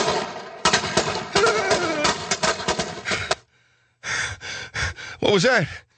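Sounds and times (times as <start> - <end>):
string of firecrackers crackling and popping: 0.0 - 3.4
speech: 5.2 - 5.9.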